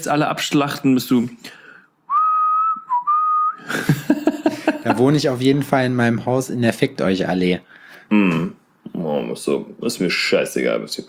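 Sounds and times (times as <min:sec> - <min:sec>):
speech: 0:00.0 - 0:01.6, 0:04.8 - 0:11.0
person whistling while walking along a promenade: 0:02.1 - 0:03.8
laughter: 0:03.6 - 0:05.2.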